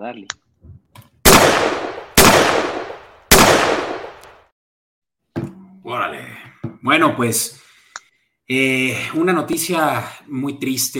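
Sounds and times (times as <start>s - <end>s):
speech: 0.0s - 0.4s, 5.9s - 7.6s, 8.5s - 10.9s
gunshots with sharp crack and decay: 1.2s - 4.2s.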